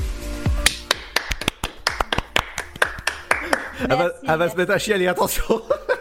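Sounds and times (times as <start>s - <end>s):
light applause: 0.7s - 3.9s
speech: 3.8s - 5.9s
laughter: 5.2s - 5.9s.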